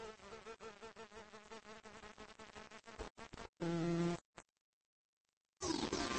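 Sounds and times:
bumblebee buzzing in flight: 0.0s - 4.2s.

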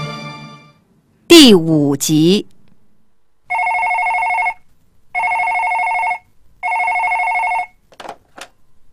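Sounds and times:
speech: 1.4s - 2.5s
telephone ringing in loud electronic bursts: 3.5s - 7.8s.

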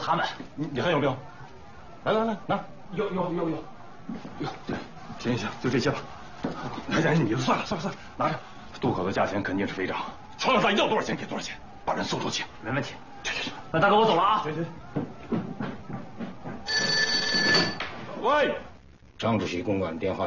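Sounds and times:
people talking agitatedly: 0.0s - 15.7s
speech: 0.1s - 1.4s, 2.0s - 15.8s, 18.2s - 20.2s
telephone ringing: 16.6s - 17.8s.

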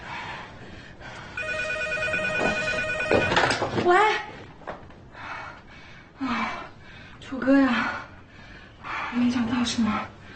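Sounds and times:
telephone ringing with a bright electronic tone: 1.4s - 3.8s
speech: 3.2s - 4.3s, 7.3s - 8.0s, 9.6s - 10.2s.

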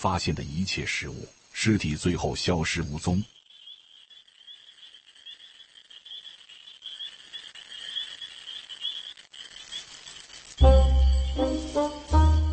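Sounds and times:
speech: 0.0s - 3.4s
deep throaty toad croaks: 0.0s - 9.8s
toads croaking on a summer night: 0.0s - 12.0s
high chirring of insects: 0.0s - 12.5s.

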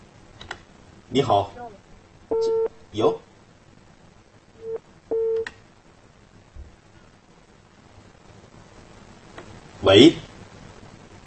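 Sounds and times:
speech: 1.1s - 1.6s, 2.3s - 3.3s, 9.9s - 10.3s
telephone busy tone after a call is hung up: 4.6s - 5.5s.

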